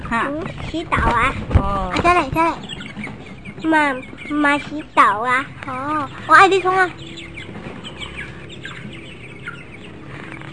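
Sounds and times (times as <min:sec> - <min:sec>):
chicks peeping in high-pitched chirps: 0:00.0 - 0:10.5
low rumble: 0:00.0 - 0:10.5
speech: 0:00.1 - 0:02.7, 0:03.6 - 0:07.1.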